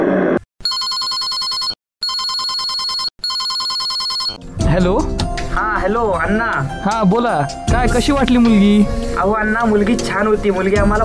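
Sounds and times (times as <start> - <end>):
telephone ringing on an outgoing call: 0.6 - 4.4
speech: 4.7 - 11.0.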